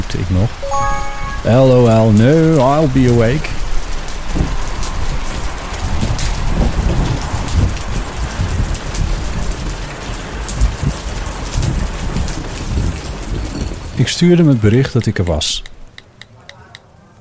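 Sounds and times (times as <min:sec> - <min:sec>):
speech: 0:00.1 - 0:03.6, 0:14.2 - 0:15.8
heavy storm rain pattering on surfaces: 0:02.2 - 0:14.8.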